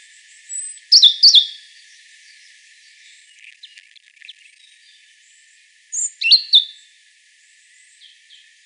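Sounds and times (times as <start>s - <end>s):
European robin Erithacus rubecula singing: 0.1s - 6.9s.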